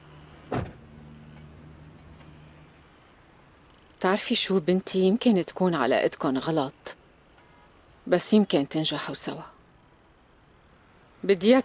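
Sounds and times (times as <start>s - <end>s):
low steady hum of a quiet vehicle interior: 0.0s - 4.8s
car door shutting: 0.4s - 2.4s
speech: 4.0s - 7.0s, 8.1s - 9.5s, 11.2s - 11.6s.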